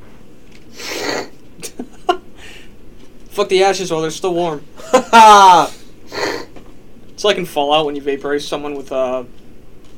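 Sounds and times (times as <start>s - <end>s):
loud sniffing: 0.7s - 1.3s
speech: 3.4s - 5.8s, 7.2s - 9.4s.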